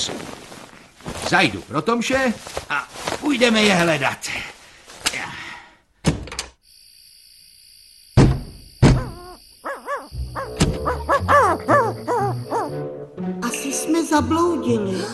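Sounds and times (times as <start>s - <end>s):
insects chirping: 0.0s - 14.2s
speech: 1.3s - 4.4s, 14.2s - 15.1s
sharp thuds and knocks: 8.2s - 9.3s
owl hooting: 8.9s - 12.8s.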